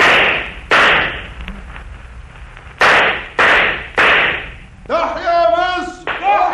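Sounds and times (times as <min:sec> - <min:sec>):
gunshots fired by guards: 0:00.0 - 0:01.4, 0:02.8 - 0:04.6, 0:06.0 - 0:06.4.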